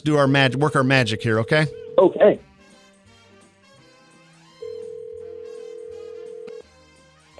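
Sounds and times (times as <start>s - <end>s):
speech: 0.0s - 2.5s
quiet music: 0.0s - 7.3s
outgoing phone call ringing tone: 0.4s - 2.4s, 4.6s - 6.7s.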